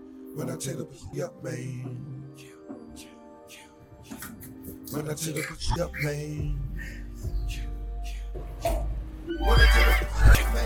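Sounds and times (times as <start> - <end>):
speech: 0.4 - 3.1, 4.9 - 7.6
horse neighing: 9.3 - 10.4.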